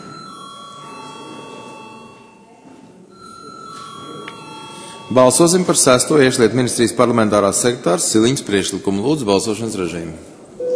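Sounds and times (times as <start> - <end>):
parliament chamber electric bell ringing for a vote: 0.0 - 2.4, 3.1 - 5.6
low murmur of room noise: 0.0 - 10.7
speech: 5.1 - 10.4.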